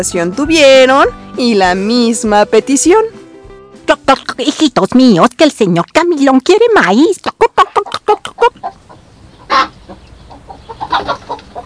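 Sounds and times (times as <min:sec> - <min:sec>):
speech: 0:00.0 - 0:03.2, 0:03.9 - 0:11.2
hen clucking at the henhouse door: 0:07.2 - 0:11.6.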